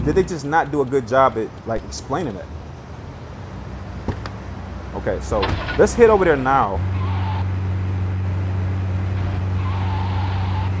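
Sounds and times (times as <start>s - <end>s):
speech: 0.0s - 2.6s, 5.0s - 7.0s
video game car engine drone: 0.0s - 10.7s
video game car tire squeals: 5.4s - 8.2s, 8.9s - 10.7s.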